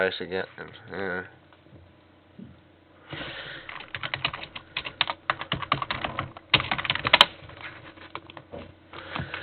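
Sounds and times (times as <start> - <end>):
speech: 0.0 - 1.4
typing on computer keyboard: 3.7 - 7.3.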